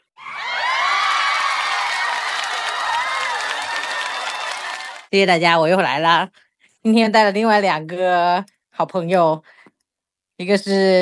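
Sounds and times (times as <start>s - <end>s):
crowd cheering with high whoops and shouts: 0.2s - 5.1s
dense crowd applause: 0.5s - 5.1s
speech: 5.1s - 9.6s, 10.4s - 11.0s.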